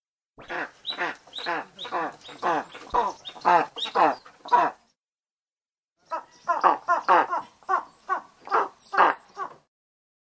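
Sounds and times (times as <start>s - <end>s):
eastern imperial eagle calling with rough croaking barks: 0.4s - 4.8s, 6.1s - 9.6s.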